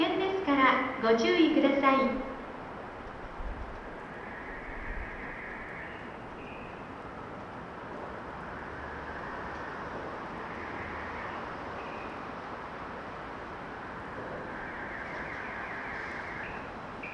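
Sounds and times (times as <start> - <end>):
train arriving at a station platform: 0.0 - 17.1
speech: 1.0 - 2.4.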